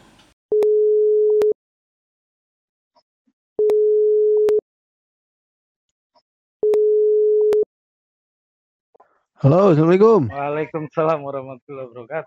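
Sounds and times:
telephone ringback tone during a phone call: 0.6 - 1.6, 3.6 - 4.6, 6.6 - 7.7
speech: 9.4 - 12.2.

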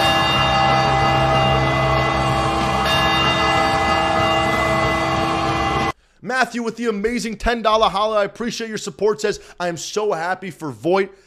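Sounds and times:
celebratory win bells ringing after a baseball win: 0.0 - 6.0
speech: 6.4 - 11.2.

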